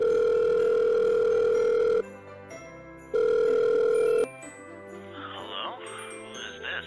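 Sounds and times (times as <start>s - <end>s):
phone ringback tone electronic burr: 0.0s - 2.0s, 3.1s - 4.3s.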